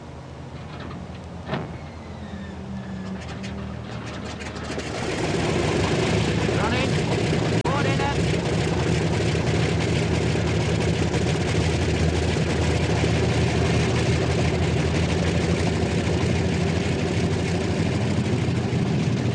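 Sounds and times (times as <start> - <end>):
wartime aircraft outer engines starting and running on the tarmac before takeoff: 0.0 - 19.3
person speaking: 7.7 - 8.2.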